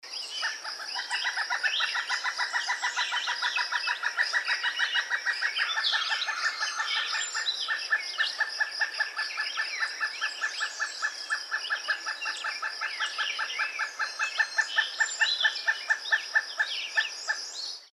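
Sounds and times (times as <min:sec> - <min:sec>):
pileated woodpecker: 0:00.1 - 0:17.9.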